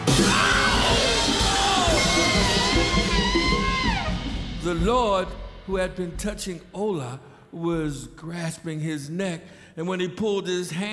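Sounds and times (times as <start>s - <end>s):
loud strained yell of pain: 0.0s - 4.2s
speech: 4.8s - 10.9s.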